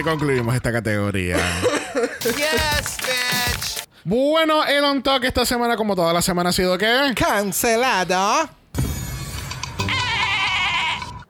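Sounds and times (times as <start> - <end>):
speech: 0.0 - 8.6
loud goat bleat sound effect: 9.8 - 11.2.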